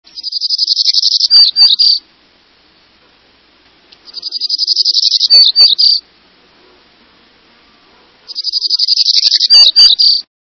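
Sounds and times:
Hermit Warbler songs: 0:00.1 - 0:02.1, 0:03.9 - 0:06.1, 0:07.7 - 0:10.3.

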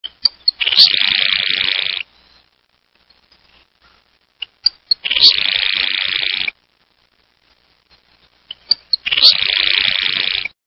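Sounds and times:
Grasshopper Sparrow singing: 0:00.0 - 0:02.5, 0:04.4 - 0:06.5, 0:07.9 - 0:10.5.

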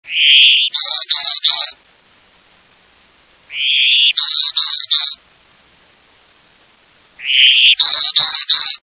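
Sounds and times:
Golden-winged Warbler: 0:00.0 - 0:01.8, 0:03.5 - 0:05.3, 0:07.2 - 0:08.8.

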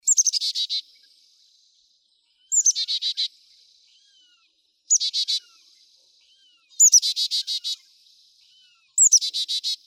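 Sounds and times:
Carolina chickadee calling: 0:00.0 - 0:00.8, 0:02.4 - 0:03.3, 0:04.0 - 0:05.7, 0:06.3 - 0:07.9, 0:08.5 - 0:09.8.

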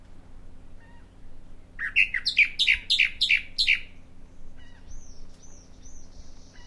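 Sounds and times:
soft background hiss and hum: 0:00.0 - 0:06.6
Bahama mockingbird song of downslurred and whistled notes: 0:01.8 - 0:06.6.

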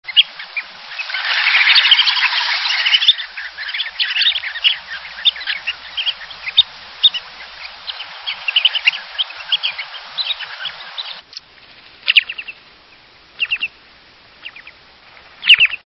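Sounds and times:
short-billed dowitcher songs: 0:00.0 - 0:13.8, 0:14.4 - 0:14.8, 0:15.4 - 0:15.8.

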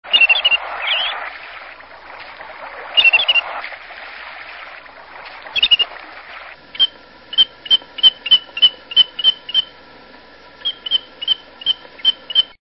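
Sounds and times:
Wandering Tattler singing: 0:00.1 - 0:01.2, 0:03.0 - 0:03.4, 0:05.6 - 0:05.8, 0:06.8 - 0:09.7, 0:10.6 - 0:12.6.

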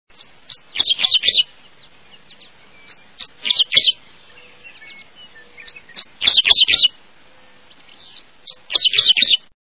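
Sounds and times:
Dickcissel singing: 0:00.1 - 0:09.5.

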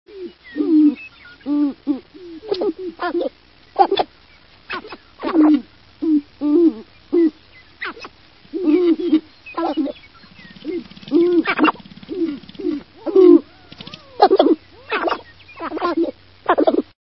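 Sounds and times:
sharp-tailed grouse calling: 0:00.1 - 0:16.9.

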